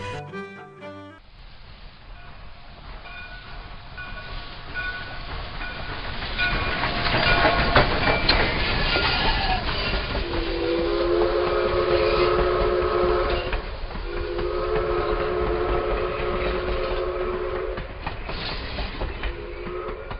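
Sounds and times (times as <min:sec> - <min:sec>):
train rumbling and clattering along the rails: 0:02.0 - 0:20.1
train whistle blasts: 0:10.2 - 0:17.9, 0:19.3 - 0:20.1.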